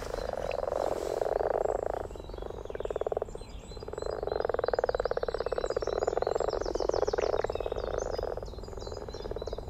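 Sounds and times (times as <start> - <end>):
chorus of common frogs croaking in a purring churr: 0.0 - 9.6.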